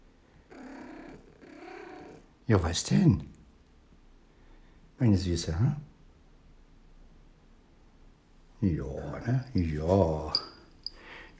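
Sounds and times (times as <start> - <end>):
cat purring: 0.5 - 2.3
speech: 2.5 - 3.4, 5.0 - 5.9, 8.6 - 10.4.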